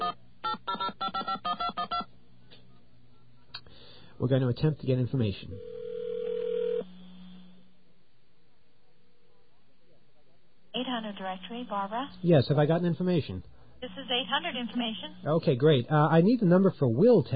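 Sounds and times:
steady telephone dial tone: 0.0s - 2.1s, 5.6s - 7.4s
speech: 4.2s - 5.7s, 11.1s - 17.3s.

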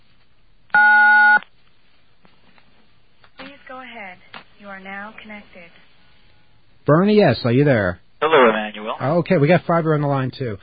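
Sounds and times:
phone keypad tone as key nine is pressed to accept a collect call: 0.8s - 1.4s
speech: 4.1s - 5.9s, 6.9s - 10.6s.

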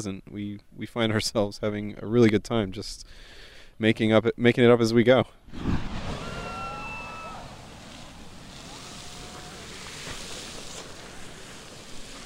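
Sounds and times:
speech: 0.0s - 5.7s
wind-like roar: 5.5s - 10.5s
hot water mist spraying: 5.8s - 12.2s.

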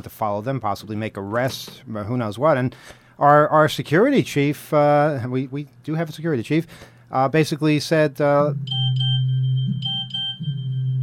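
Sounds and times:
speech: 0.0s - 9.1s
low hum: 8.4s - 11.0s
steady electronic censor bleep over profanity: 8.5s - 11.0s.

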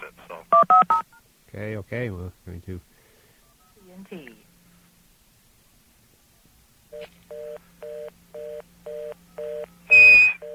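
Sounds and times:
speech: 1.5s - 2.9s, 4.0s - 4.5s
touch-tone keypad beeps from a calling-card call through an operator line: 7.0s - 10.5s.

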